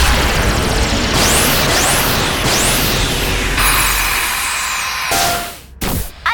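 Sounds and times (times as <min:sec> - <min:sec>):
dense roar of explosions: 0:00.0 - 0:04.3
beam weapons fired at a target: 0:00.0 - 0:06.2.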